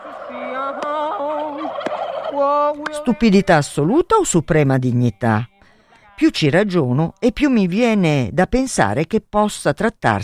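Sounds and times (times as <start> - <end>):
turkey gobbling: 0.0 - 3.7
speech: 2.4 - 5.5, 6.2 - 10.2.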